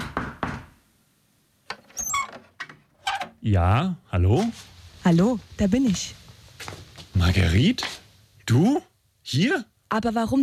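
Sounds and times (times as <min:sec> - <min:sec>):
knocking on a door: 0:00.0 - 0:00.8
rattling faintly squeaky handling of the door: 0:01.7 - 0:03.4
speech: 0:03.4 - 0:10.4.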